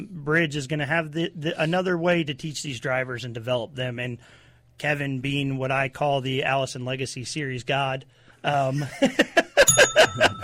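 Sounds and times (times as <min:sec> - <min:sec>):
speech: 0:00.2 - 0:09.4, 0:10.0 - 0:10.4
people laughing: 0:08.7 - 0:10.4
bright ringing bell ding sound effect: 0:09.6 - 0:10.4.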